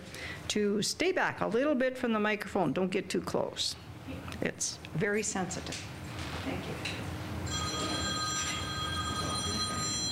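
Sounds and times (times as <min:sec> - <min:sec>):
speech: 0:00.5 - 0:07.2
old-fashioned telephone bell ringing: 0:07.4 - 0:10.1.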